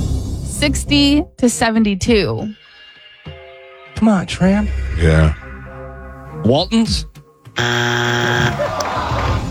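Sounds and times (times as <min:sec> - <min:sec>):
speech: 0:00.6 - 0:02.6, 0:04.0 - 0:05.4, 0:06.4 - 0:08.9
game timer buzzer: 0:07.6 - 0:08.6.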